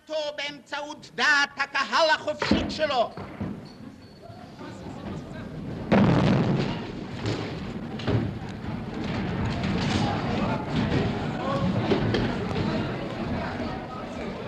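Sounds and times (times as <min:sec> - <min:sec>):
speech: 0:00.4 - 0:03.3
murmuring voices in parliament hall: 0:04.2 - 0:14.4
rumbling noise and commotion: 0:05.0 - 0:12.8
heavy bomb blast in parliament hall: 0:05.8 - 0:08.4.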